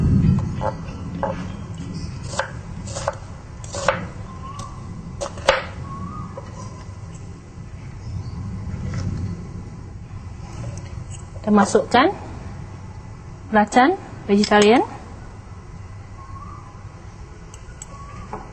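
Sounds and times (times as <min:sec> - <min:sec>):
low steady hum: 0:00.0 - 0:18.5
knife chopping a large onion into small pieces: 0:02.2 - 0:04.1
speech: 0:11.5 - 0:12.2, 0:13.5 - 0:14.9.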